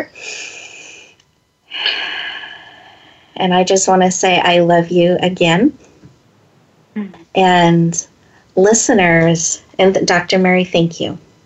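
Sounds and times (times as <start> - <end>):
person drawing a deep breath in: 0.2 - 3.4
speech: 3.4 - 5.9, 7.0 - 11.2.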